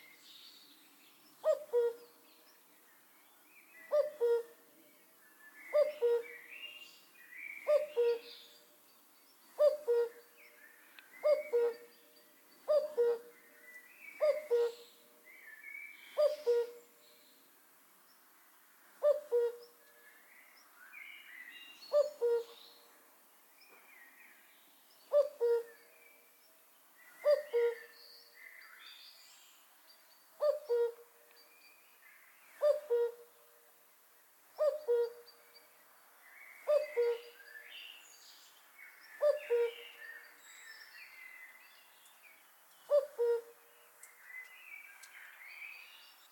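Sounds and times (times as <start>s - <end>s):
cuckoo calling: 1.4s - 2.2s, 3.9s - 4.6s, 5.7s - 6.5s, 7.6s - 8.3s, 9.6s - 10.3s, 11.1s - 11.9s, 12.6s - 15.0s, 16.1s - 16.8s, 19.0s - 19.7s, 21.9s - 22.6s, 25.1s - 25.9s, 27.1s - 28.0s, 30.4s - 31.1s, 32.5s - 33.3s, 34.6s - 35.4s, 36.6s - 37.4s, 39.2s - 40.3s, 42.9s - 45.1s.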